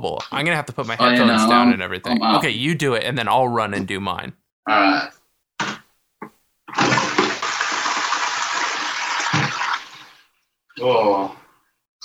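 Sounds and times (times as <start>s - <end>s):
speech: 0.0s - 5.2s, 10.8s - 11.4s
toilet flushing with a loud, forceful rush of water: 6.7s - 10.4s.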